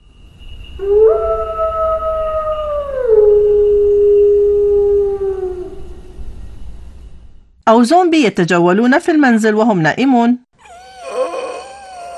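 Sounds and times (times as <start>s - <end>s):
wolf howl sound effect: 0.8s - 6.2s, 10.7s - 12.1s
speech: 7.7s - 10.4s.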